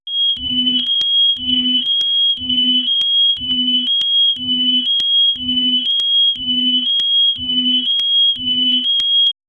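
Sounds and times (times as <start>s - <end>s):
futuristic sci-fi alarm: 0.1s - 9.4s.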